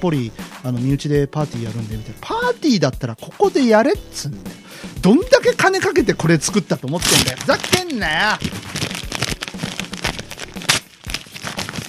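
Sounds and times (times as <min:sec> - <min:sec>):
speech: 0:00.0 - 0:09.3
stiff paper flyer being pulled and twisted: 0:06.2 - 0:11.8.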